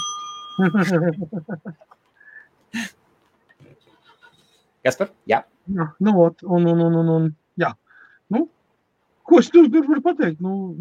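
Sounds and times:
small bell rung to close an auction bid: 0.0s - 1.3s
speech: 0.6s - 2.0s, 4.8s - 8.6s, 9.3s - 10.8s.

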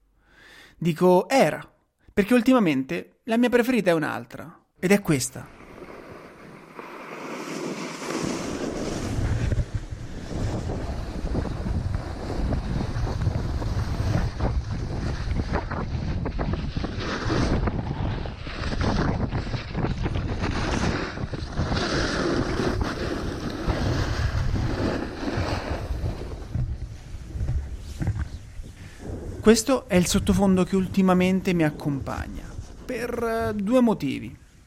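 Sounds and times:
speech: 0.8s - 5.6s, 29.5s - 34.4s
snowboard gliding over snow: 5.5s - 33.8s
gusty wind rumble buffeting the microphone: 8.6s - 33.6s.

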